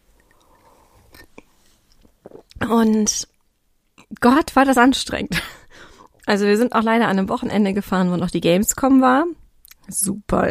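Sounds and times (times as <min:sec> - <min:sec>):
low hum: 0:00.0 - 0:10.4
wet slurp and swallow of a big sip of coffee: 0:00.2 - 0:02.6
soft mouth noises: 0:01.2 - 0:03.2
speech: 0:02.7 - 0:03.3, 0:04.2 - 0:05.6, 0:06.3 - 0:10.4.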